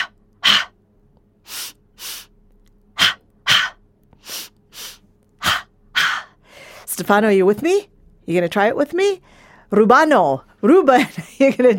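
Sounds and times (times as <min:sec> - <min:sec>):
breathing in through nose, out through mouth: 0:00.0 - 0:00.8, 0:01.4 - 0:02.4, 0:03.0 - 0:06.9, 0:09.2 - 0:09.7
speech: 0:07.0 - 0:11.7.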